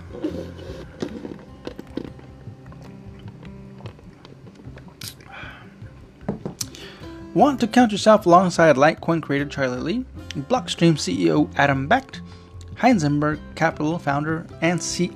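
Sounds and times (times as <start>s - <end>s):
sipping water with wet slurps: 0.0s - 7.2s
small mouth clicks: 0.8s - 5.4s
speech: 7.4s - 12.2s, 12.8s - 15.1s.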